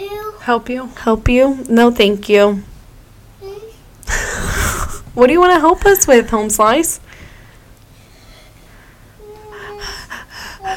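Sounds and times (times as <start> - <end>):
speech: 0.0 - 2.7, 5.2 - 7.0
heavy rapid breathy huffs: 4.1 - 5.1, 7.1 - 10.7.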